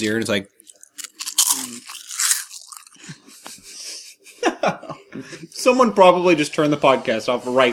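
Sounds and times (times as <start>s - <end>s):
speech: 0.0s - 0.6s, 4.6s - 7.7s
person chewing a crisp snack: 0.6s - 3.2s
laughter: 3.0s - 5.5s.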